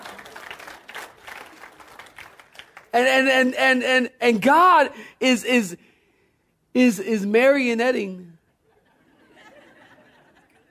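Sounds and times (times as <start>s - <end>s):
audience clapping hands in dense applause: 0.0s - 3.0s
speech: 2.9s - 5.9s, 6.8s - 8.3s
laughter: 8.7s - 10.7s.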